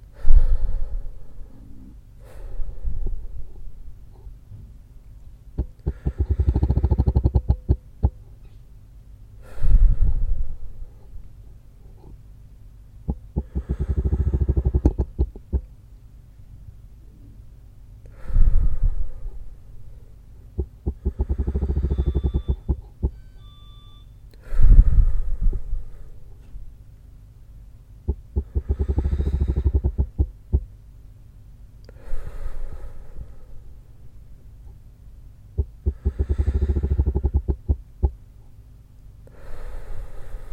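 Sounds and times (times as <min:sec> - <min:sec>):
person doing a guided breathing exercise: 0:00.0 - 0:04.4, 0:05.6 - 0:08.2, 0:09.4 - 0:12.2, 0:13.1 - 0:15.7, 0:18.0 - 0:23.1, 0:24.3 - 0:26.7, 0:28.1 - 0:30.7, 0:31.8 - 0:34.8, 0:35.6 - 0:38.2, 0:39.2 - 0:40.5.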